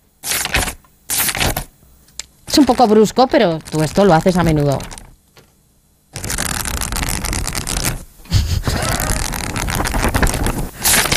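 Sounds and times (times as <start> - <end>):
book pages being turned while reading: 0.2 - 1.7, 2.5 - 5.5, 6.2 - 8.0, 8.8 - 11.1
speech: 2.6 - 5.0.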